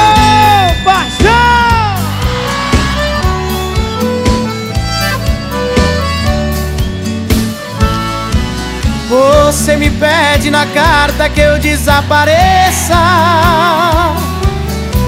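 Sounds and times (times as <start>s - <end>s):
live crowd yelling and whooping: 0.0s - 5.3s
band playing with thumping bass rhythm and bright sustained tones: 0.0s - 15.0s
speech: 10.6s - 14.3s.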